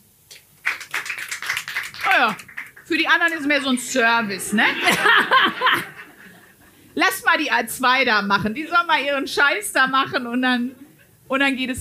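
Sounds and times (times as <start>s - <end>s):
small live audience clapping: 0.3s - 6.2s
speech: 2.2s - 5.9s, 7.0s - 11.7s
laughter: 3.3s - 6.6s.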